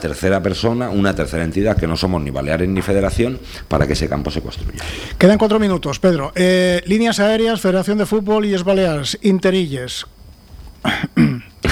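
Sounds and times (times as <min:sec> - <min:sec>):
speech: 0:00.0 - 0:10.1, 0:10.8 - 0:11.7
person clearing throat: 0:10.8 - 0:11.7.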